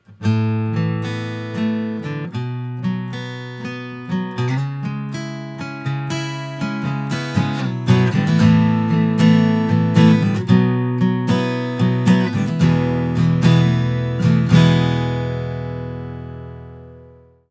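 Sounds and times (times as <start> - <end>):
natural guitar: 0.0 - 17.4.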